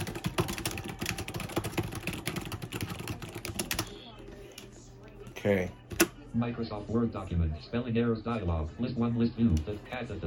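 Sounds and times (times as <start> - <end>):
typing on a computer keyboard while writing in a Microsoft Word document: 0.0 - 4.0
speech: 5.4 - 10.2.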